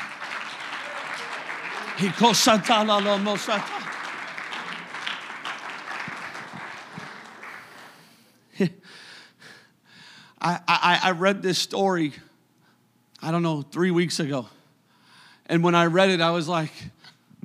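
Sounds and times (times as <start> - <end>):
people cheering and calling out: 0.0 - 8.0
audience clapping: 0.0 - 8.3
speech: 2.0 - 3.9, 8.6 - 8.8, 10.4 - 12.3, 13.2 - 14.6, 15.5 - 17.0.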